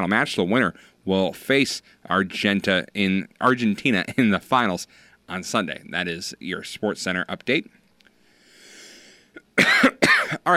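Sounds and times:
speech: 0.0s - 7.8s, 9.6s - 10.5s
faint hiss: 0.0s - 9.6s
harsh cough: 9.4s - 10.5s.

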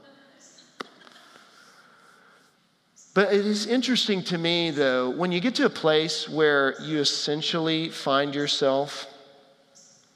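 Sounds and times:
small bird chirping indoors: 0.4s - 0.8s, 9.8s - 10.1s
speech: 3.2s - 9.1s.

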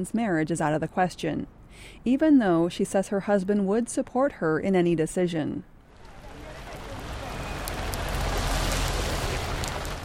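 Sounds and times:
speech: 0.0s - 5.7s
heavy rain pouring in Pune India: 5.9s - 10.0s.

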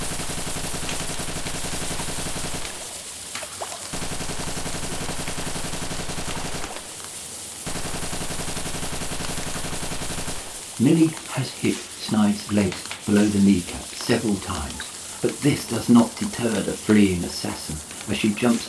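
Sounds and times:
Tommy gun firing until its drum magazine is empty: 0.0s - 2.8s, 4.0s - 6.9s, 7.7s - 10.6s
speech: 10.8s - 18.6s.

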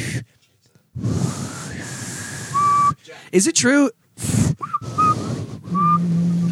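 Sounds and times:
breathy blown air from a failed attempt at whistling: 1.0s - 3.4s, 4.2s - 6.4s
speech: 3.3s - 4.7s.

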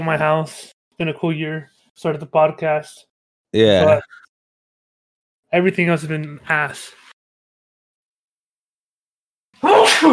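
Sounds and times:
speech: 0.0s - 4.2s, 5.5s - 7.0s, 9.6s - 10.1s
person sneezing: 9.6s - 10.1s.

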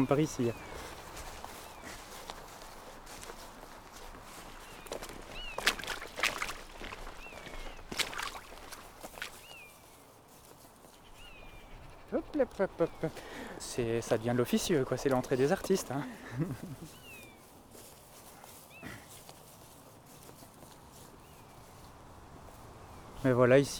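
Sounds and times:
speech: 0.0s - 1.0s, 12.6s - 17.1s, 23.2s - 23.7s
footsteps crunching through a grassy field: 0.0s - 23.7s
short harmonic animal call: 11.0s - 13.6s
laughter: 15.9s - 17.0s.

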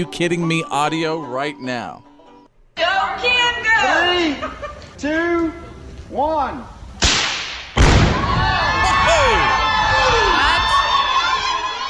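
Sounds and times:
speech: 0.0s - 2.1s, 3.0s - 6.8s
laughter: 4.2s - 5.0s
detonated explosive target explosion: 7.0s - 8.8s
excited crowd cheering, shouting and whistling: 8.1s - 11.8s.

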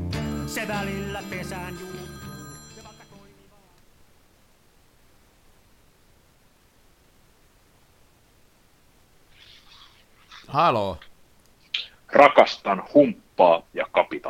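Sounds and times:
phone ringing with bright harmonic electronic tone: 0.1s - 3.7s
static hiss: 3.3s - 14.2s
speech: 10.5s - 11.1s, 12.1s - 14.2s.

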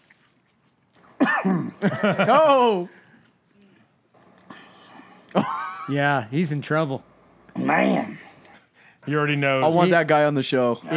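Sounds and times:
man coughing: 1.2s - 2.4s, 5.3s - 6.0s
speech: 1.4s - 3.0s, 5.3s - 8.2s, 9.0s - 10.9s
laughter: 1.8s - 3.0s, 5.3s - 6.0s.

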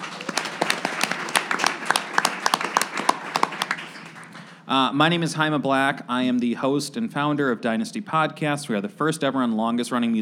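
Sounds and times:
audience applause at an evening event in Fulton Market, Chicago: 0.0s - 4.6s
speech: 4.7s - 10.2s.

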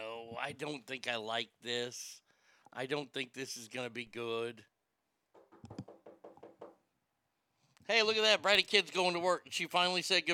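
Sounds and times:
speech: 0.4s - 4.7s, 7.9s - 10.3s
knocking on a door: 5.3s - 6.8s.

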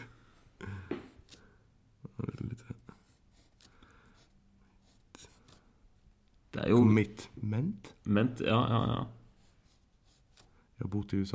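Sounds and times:
pen scratching out a single word on paper: 2.9s - 5.6s, 8.7s - 10.5s
speech: 6.6s - 9.2s, 10.9s - 11.3s.

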